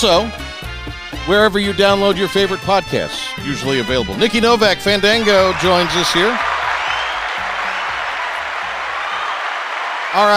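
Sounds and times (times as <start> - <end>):
speech: 0.0 - 0.4, 1.2 - 6.5, 10.1 - 10.3
crowd clapping: 5.0 - 10.3.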